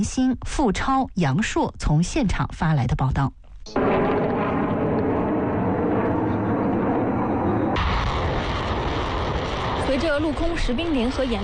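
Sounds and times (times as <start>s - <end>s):
speech: 0.0s - 3.8s, 10.0s - 11.4s
swarm of military drones taking off with loud roar and low rumble: 3.7s - 10.0s.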